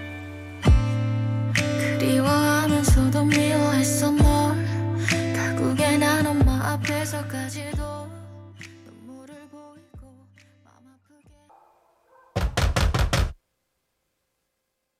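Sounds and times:
song with a low bass line: 0:00.0 - 0:08.8
someone pounding hard on a door: 0:12.4 - 0:13.4.

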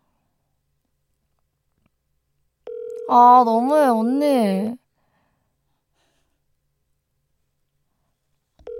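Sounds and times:
telephone ringback tone while calling: 0:02.7 - 0:03.2
speech: 0:03.1 - 0:04.8.

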